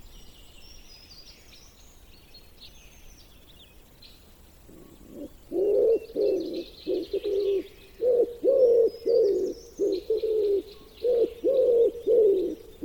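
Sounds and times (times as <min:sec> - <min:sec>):
faint high twittering of other birds: 0:00.1 - 0:12.8
common wood pigeon cooing: 0:04.7 - 0:12.8.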